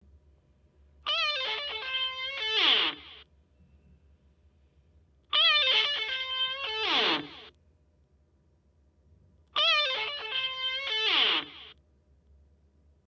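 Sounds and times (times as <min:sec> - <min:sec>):
rock guitar recorded holophonically: 0:01.1 - 0:03.2, 0:05.3 - 0:07.5, 0:09.6 - 0:11.7.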